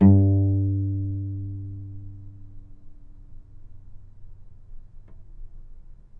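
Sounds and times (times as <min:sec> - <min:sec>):
novice cello plucking G2: 0:00.0 - 0:02.7.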